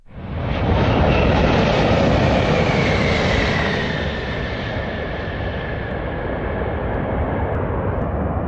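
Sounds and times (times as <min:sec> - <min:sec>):
Airbus A380 passenger jet airliner landing: 0:00.0 - 0:08.4.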